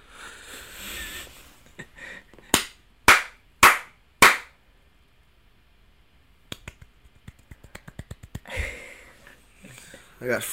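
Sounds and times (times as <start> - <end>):
slow soft golf claps: 2.5 - 4.5, 6.5 - 8.6
speech: 10.2 - 10.5.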